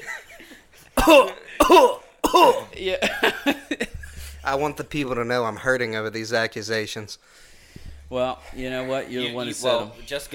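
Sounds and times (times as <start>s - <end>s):
harsh throaty coughs in a coughing fit: 1.0s - 2.8s
speech: 1.0s - 7.5s, 8.1s - 10.3s.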